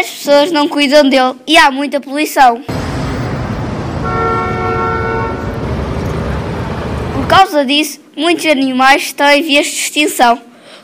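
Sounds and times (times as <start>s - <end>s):
speech: 0.0s - 2.8s, 7.3s - 10.5s
large garbage truck dumping rubbish by a lake in a forest clearing: 2.7s - 7.4s
long droning horn-like blast: 2.7s - 7.4s.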